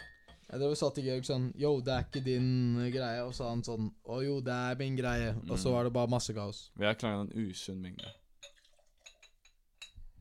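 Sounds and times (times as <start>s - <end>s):
speech: 0.5s - 8.2s
beer pouring into a glass: 8.5s - 9.2s.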